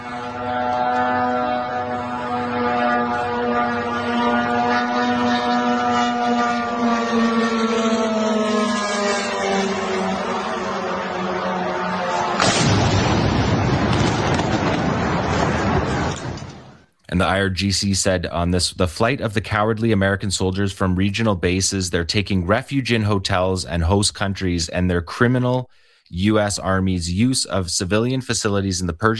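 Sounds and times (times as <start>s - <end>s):
IRGC drone propeller engine buzzing: 0.0s - 16.8s
drone impact blast on a U.S. hotel in Bahrain: 12.4s - 16.8s
speech: 17.3s - 29.1s.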